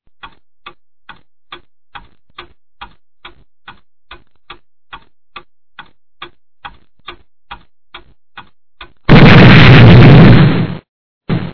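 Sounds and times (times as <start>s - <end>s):
time bomb: 9.1s - 11.5s.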